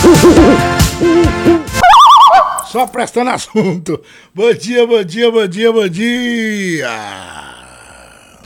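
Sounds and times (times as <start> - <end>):
speech: 0.1 - 1.5, 2.7 - 7.5
owl hooting: 1.8 - 2.7.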